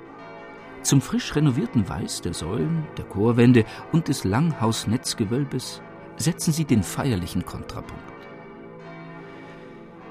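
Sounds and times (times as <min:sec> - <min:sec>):
six church bells ringing in the neo-Gothic tower of the parish church in Tölz: 0:00.0 - 0:10.1
speech: 0:00.8 - 0:08.2.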